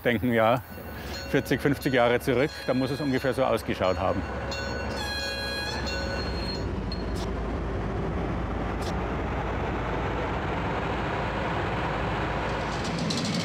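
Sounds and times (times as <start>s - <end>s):
speech: 0.0s - 0.7s, 1.3s - 4.8s
train wheels rumbling on track: 0.0s - 13.4s
tonal whine: 0.2s - 13.4s
metallic squeals: 0.3s - 7.3s.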